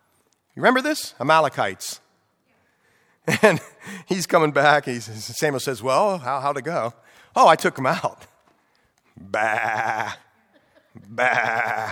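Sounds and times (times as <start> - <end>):
speech: 0.6 - 2.0, 3.2 - 8.3, 9.2 - 10.2, 11.0 - 11.8
sheep bleating: 9.2 - 10.3, 11.1 - 11.8.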